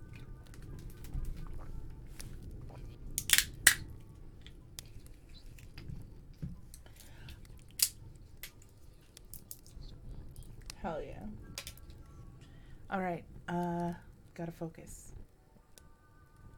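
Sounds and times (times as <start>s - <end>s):
low rumble: 0.0s - 16.5s
pistachio nut shells cracking: 3.2s - 3.8s, 6.7s - 9.8s, 11.5s - 12.0s
speech: 10.8s - 11.4s, 12.9s - 15.1s.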